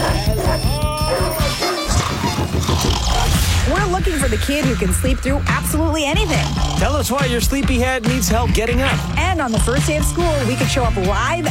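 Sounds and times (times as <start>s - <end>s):
several dogs barking and yipping: 0.0s - 2.9s, 8.7s - 9.3s
speech: 4.0s - 11.4s.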